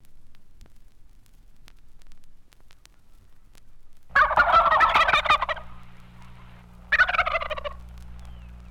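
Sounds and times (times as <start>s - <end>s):
steady low electrical hum: 0.0s - 8.7s
turkey gobbling: 2.8s - 8.7s.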